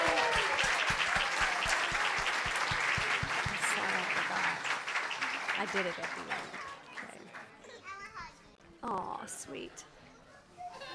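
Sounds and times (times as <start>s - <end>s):
rhythmic beat of unison claps: 0.0s - 7.5s
audience applauding: 0.0s - 7.6s
speech: 5.6s - 6.6s, 8.9s - 9.9s.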